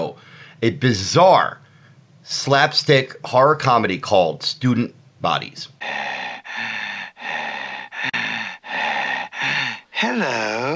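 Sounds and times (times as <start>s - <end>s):
loud raspy heavy breathing: 0.1s - 0.6s, 5.8s - 10.7s
speech: 0.6s - 1.6s, 2.2s - 6.1s, 10.0s - 10.7s.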